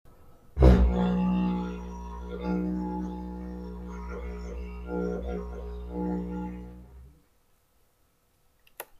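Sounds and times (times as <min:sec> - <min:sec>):
didgeridoo: 0:00.6 - 0:07.2.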